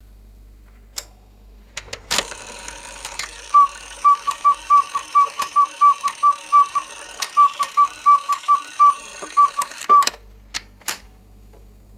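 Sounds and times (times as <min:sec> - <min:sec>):
mechanical cuckoo clock striking: 0:02.2 - 0:10.2.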